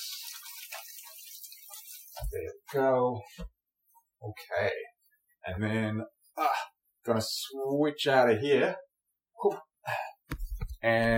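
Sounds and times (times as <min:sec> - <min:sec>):
water running from a tap as hands are rinsed: 0:00.0 - 0:02.5
speech: 0:02.3 - 0:03.5, 0:04.2 - 0:11.1.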